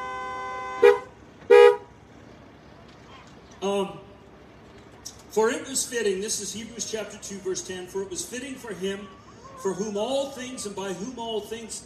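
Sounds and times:
car horns honking: 0.0 - 2.0
speech: 3.6 - 4.1, 5.3 - 11.8.

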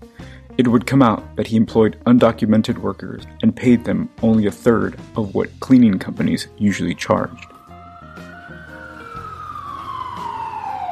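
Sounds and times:
speech: 0.6 - 7.5
ambulance siren wailing: 6.9 - 10.9
low rumble of traffic: 7.5 - 10.9.

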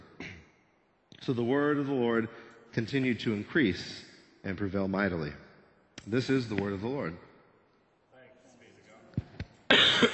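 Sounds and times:
speech: 1.2 - 5.4, 6.0 - 7.3
short thumping coughs: 9.7 - 10.1.

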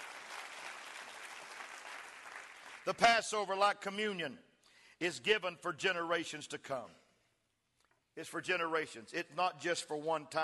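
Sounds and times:
crowd clapping: 0.0 - 3.1
speech: 2.8 - 7.0, 8.2 - 10.4.

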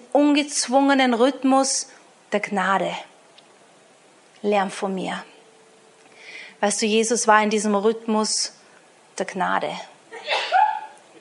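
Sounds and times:
speech: 0.2 - 3.1, 4.4 - 5.3, 6.6 - 8.6, 9.2 - 9.9
person sneezing: 10.2 - 10.9.

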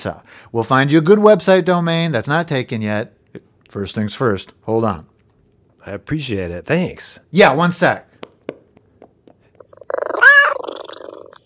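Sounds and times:
speech: 0.0 - 5.1, 5.8 - 8.1
soft taps: 8.2 - 9.6
cat purring: 9.6 - 11.4.

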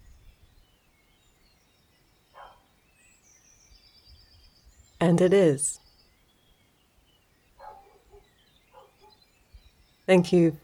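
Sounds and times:
dog barks: 2.4 - 2.7, 7.6 - 9.2
speech: 5.0 - 5.8, 10.1 - 10.6.

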